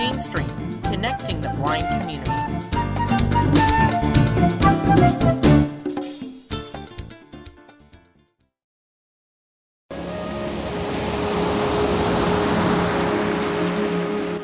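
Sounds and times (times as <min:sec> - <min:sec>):
music: 0:00.0 - 0:08.6, 0:09.9 - 0:11.7
speech: 0:00.2 - 0:02.8
ocean waves: 0:09.9 - 0:14.4.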